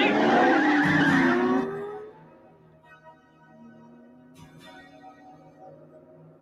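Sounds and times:
car tires squealing and skidding in a car chase: 0:00.0 - 0:02.2
car engine roaring in a car chase: 0:00.0 - 0:02.4.

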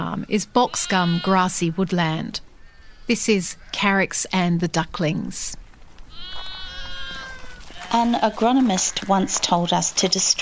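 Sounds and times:
speech: 0:00.1 - 0:02.5, 0:03.1 - 0:05.6, 0:07.9 - 0:10.4
sheep bleating on a sustainable ethical sheep farm: 0:00.5 - 0:01.8, 0:06.1 - 0:09.8.

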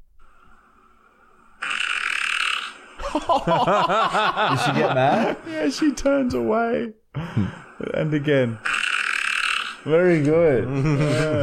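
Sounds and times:
fart from a played video: 0:01.6 - 0:02.8, 0:08.6 - 0:09.8
laughter: 0:03.0 - 0:05.7, 0:10.6 - 0:11.4
speech: 0:03.1 - 0:08.8, 0:09.8 - 0:11.4.

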